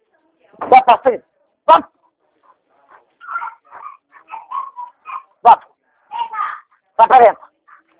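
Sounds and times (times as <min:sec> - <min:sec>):
speech: 0:00.8 - 0:01.9, 0:05.4 - 0:05.7, 0:07.0 - 0:07.4
German shepherd sharp bark: 0:02.4 - 0:05.4
German shepherd whimpering with high whining cries: 0:03.2 - 0:05.4.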